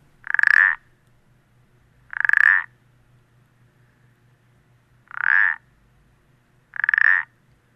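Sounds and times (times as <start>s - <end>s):
low steady hum: 0.0s - 7.7s
small toad about 4 cm long giving creaking clacking calls: 0.2s - 0.8s, 2.1s - 2.7s, 5.1s - 5.6s, 6.7s - 7.3s.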